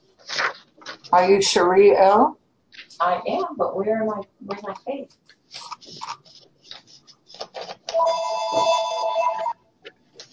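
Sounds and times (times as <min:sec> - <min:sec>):
speech: 0:01.1 - 0:02.4, 0:03.0 - 0:05.6
telephone ringing with electronic tone: 0:08.0 - 0:09.7.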